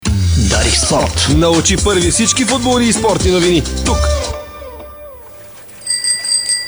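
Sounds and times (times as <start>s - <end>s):
speech: 0.7s - 4.2s
bicycle bell ringing: 4.7s - 6.6s.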